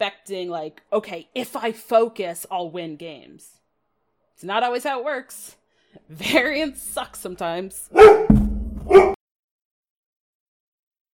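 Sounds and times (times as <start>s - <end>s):
speech: 0.0s - 3.6s, 4.4s - 9.1s
dog barking: 7.9s - 9.2s.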